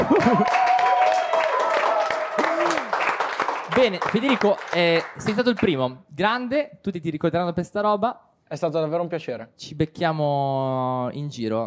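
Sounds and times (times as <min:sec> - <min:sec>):
voices whooping and calling out: 0:00.0 - 0:02.9
steady clapping: 0:00.0 - 0:05.9
speech: 0:00.2 - 0:00.7, 0:03.8 - 0:11.6.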